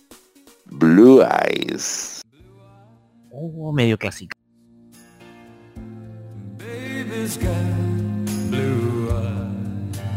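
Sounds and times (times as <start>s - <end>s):
speech: 0.8s - 2.2s, 3.4s - 4.4s, 7.3s - 7.9s
slow pop ballad with warm chords: 5.2s - 10.1s.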